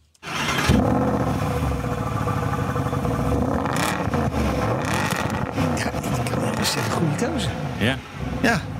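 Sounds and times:
SLS AMG V8 sports car engine starting and idling: 0:00.5 - 0:08.7
speech: 0:07.2 - 0:08.7.

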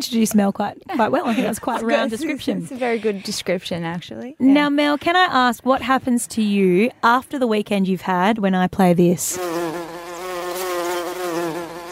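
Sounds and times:
speech: 0:00.0 - 0:09.8
laughter: 0:00.9 - 0:03.4
insect-like buzz in a song: 0:09.3 - 0:11.9.

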